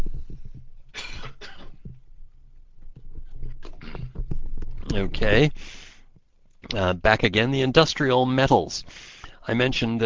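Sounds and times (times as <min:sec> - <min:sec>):
quieter rustling and small handling noises: 0:00.0 - 0:05.3
harsh coughs: 0:00.9 - 0:01.8
speech: 0:05.0 - 0:05.8, 0:06.7 - 0:10.0.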